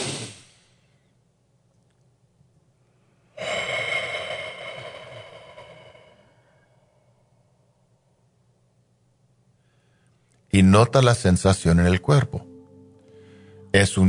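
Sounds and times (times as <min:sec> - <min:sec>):
slow deep breath in and out: 0:02.8 - 0:07.7, 0:09.5 - 0:10.4, 0:13.0 - 0:13.7
speech: 0:10.5 - 0:12.5, 0:13.7 - 0:14.0.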